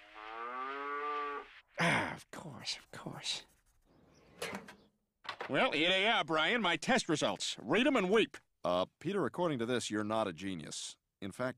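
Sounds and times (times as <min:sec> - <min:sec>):
cow mooing: 0:00.0 - 0:01.6
speech: 0:02.2 - 0:03.5, 0:05.5 - 0:11.5.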